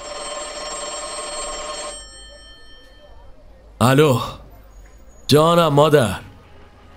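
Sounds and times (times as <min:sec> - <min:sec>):
telephone bell ringing: 0:00.0 - 0:03.4
speech: 0:03.8 - 0:04.4, 0:05.3 - 0:06.3.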